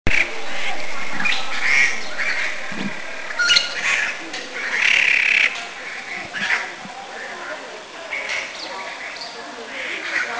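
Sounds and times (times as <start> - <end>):
Grey Treepie calling in Taiwan: 0.1 - 10.2.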